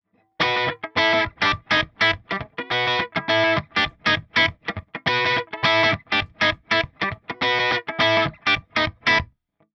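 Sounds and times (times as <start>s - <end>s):
crunchy Gretsch electric guitar played at the bridge: 0.4s - 9.3s.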